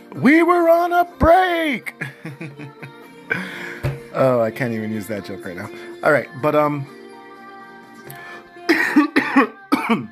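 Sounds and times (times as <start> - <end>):
speech: 0.2 - 2.4, 4.2 - 7.0, 9.4 - 10.1
laughter: 1.9 - 3.0
person coughing: 8.7 - 10.1.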